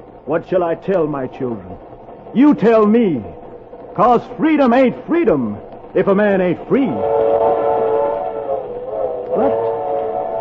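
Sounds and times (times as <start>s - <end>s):
steam train rumbling past: 0.0s - 10.4s
speech: 0.3s - 3.4s, 4.0s - 7.2s
steam train whistle sounding a long chord: 6.7s - 10.4s.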